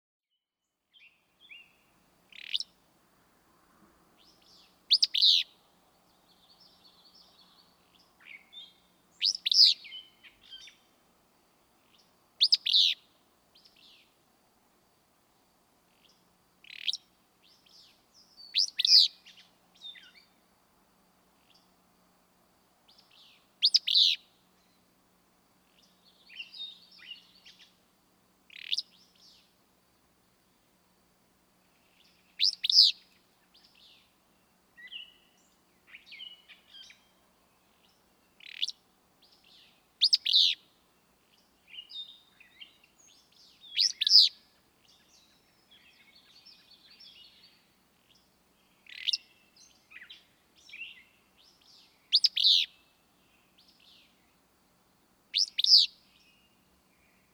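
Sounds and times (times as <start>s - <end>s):
willow flycatcher calling: 0.9s - 2.8s, 4.2s - 5.6s, 6.2s - 10.9s, 11.8s - 14.1s, 15.9s - 20.4s, 22.9s - 24.8s, 28.5s - 29.5s, 31.8s - 34.1s, 34.8s - 52.9s, 55.3s - 57.3s.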